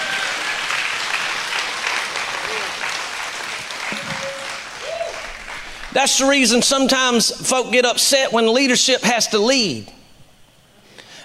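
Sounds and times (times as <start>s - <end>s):
church audience clapping hands: 0.0s - 6.7s
brief tonal sounds: 3.9s - 4.7s
speech: 6.0s - 10.0s.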